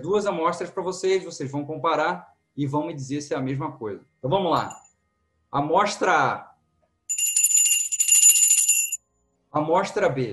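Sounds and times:
speech: 0.0s - 4.9s, 5.5s - 6.5s, 9.5s - 10.3s
Tibetan metal singing bowl rung like a bell: 7.1s - 9.0s.

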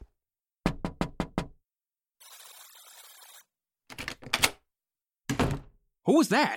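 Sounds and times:
knocking on a door: 0.7s - 1.6s
speech: 6.1s - 6.5s.

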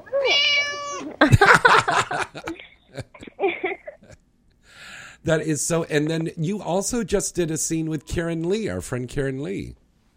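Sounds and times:
cat meowing in a studio: 0.0s - 1.2s
several people laughing in a studio: 1.2s - 4.2s
speech: 5.3s - 9.8s.

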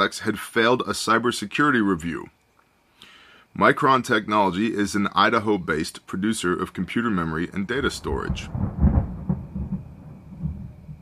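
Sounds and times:
speech: 0.0s - 2.4s, 3.6s - 8.8s
thunder rumbling: 6.7s - 10.9s.

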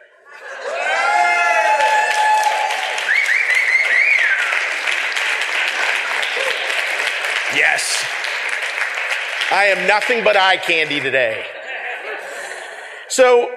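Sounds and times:
laughter: 0.0s - 1.4s, 5.0s - 8.5s, 9.5s - 13.4s
crowd applause: 0.4s - 13.0s
whoops and cheers: 0.6s - 4.7s, 6.4s - 6.7s
speech: 7.6s - 8.3s, 9.5s - 11.5s, 13.1s - 13.5s.

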